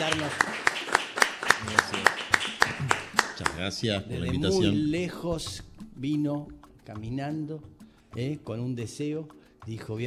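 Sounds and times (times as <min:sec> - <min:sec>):
crowd clapping in unison: 0:00.0 - 0:04.5
speech: 0:03.6 - 0:10.0.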